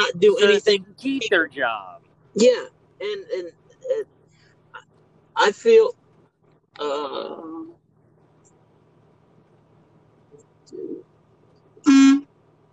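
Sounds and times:
speech: 0.0 - 4.2, 5.4 - 6.0, 6.8 - 7.8
car horn honking: 11.8 - 12.2.

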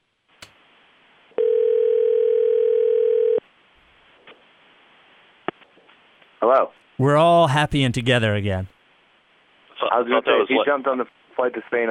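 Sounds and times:
telephone dial tone after a dropped call: 1.4 - 3.4
speech: 6.5 - 8.8, 10.0 - 11.8.

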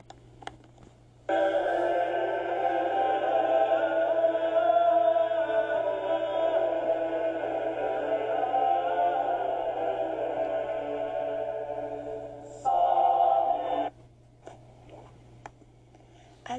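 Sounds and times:
faint low hum: 0.0 - 16.5
medieval choral polyphony with one leading voice over sustained lower voices: 1.3 - 14.0.

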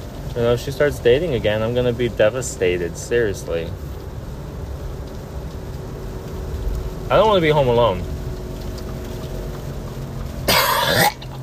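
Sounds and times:
speech: 0.4 - 3.9, 7.1 - 8.1
person coughing and gagging: 10.5 - 11.4.

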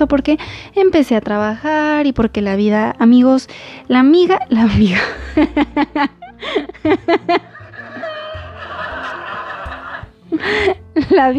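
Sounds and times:
speech: 0.0 - 8.1, 10.3 - 11.3
canned studio audience laughter: 5.0 - 11.1.

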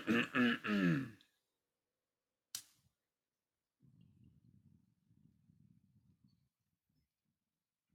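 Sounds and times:
drawn-out voiced throat-clearing grunt: 0.0 - 1.2
single short weak cough: 0.0 - 1.2.

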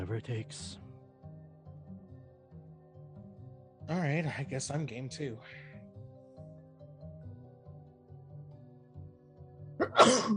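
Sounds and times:
speech: 0.2 - 0.8, 3.9 - 5.6
single sharp sneeze: 9.8 - 10.3.

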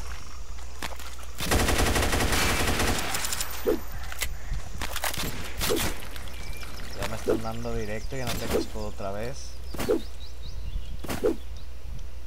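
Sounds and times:
scattered single shots and clicks in a video game: 0.8 - 7.4, 8.2 - 8.8
machine gun fire in a video game: 1.4 - 3.6
speech: 7.4 - 10.2.

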